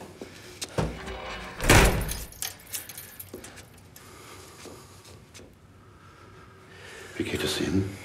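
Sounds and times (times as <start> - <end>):
door swinging shut with a solid thud: 0.8 - 2.3
keys jingling and rattling: 1.1 - 3.9
speech: 7.2 - 8.0.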